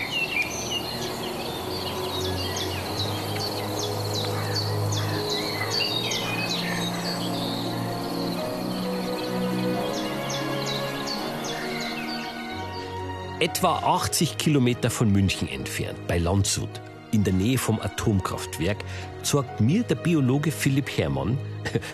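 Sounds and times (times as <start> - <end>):
insects buzzing: 0.0 - 13.4
common blackbird singing from treetop: 0.0 - 21.3
outdoor chorus of chirping birds: 0.0 - 21.9
speech: 13.4 - 21.9
laughter: 21.6 - 21.9.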